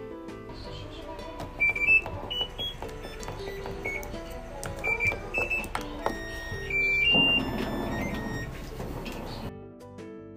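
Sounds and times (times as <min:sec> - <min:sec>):
steady washing machine mechanical hum: 0:00.2 - 0:09.5
washing machine control panel short electronic beeps forming a melody: 0:01.5 - 0:09.5.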